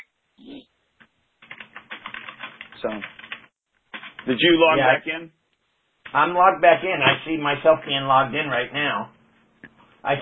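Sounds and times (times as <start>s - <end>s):
quick keystrokes on a computer keyboard: 1.4s - 4.4s
speech: 2.8s - 3.2s, 4.2s - 5.4s, 6.1s - 9.2s.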